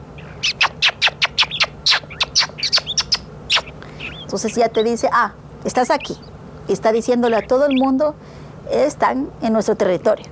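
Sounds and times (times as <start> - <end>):
Galápagos mockingbird singing: 0.0 - 8.2
faint hiss: 0.0 - 10.3
speech: 4.3 - 10.3.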